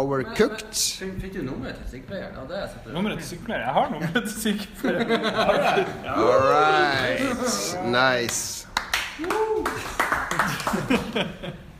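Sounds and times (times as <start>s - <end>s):
speech: 0.0s - 10.0s, 10.7s - 11.6s
voices laughing: 4.0s - 7.8s, 10.3s - 11.7s
sparse limp hand claps: 8.3s - 11.2s.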